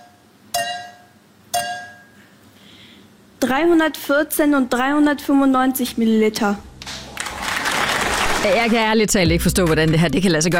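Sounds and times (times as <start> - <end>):
two water-filled glasses clinking together: 0.0 - 2.2
speech: 3.5 - 6.7, 8.4 - 10.5.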